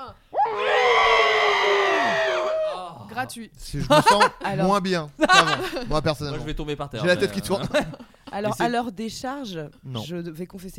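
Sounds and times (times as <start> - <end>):
group of people screaming into their elbows: 0.3 - 3.0
speech: 3.2 - 10.7
laughter: 3.8 - 6.0, 7.0 - 8.6.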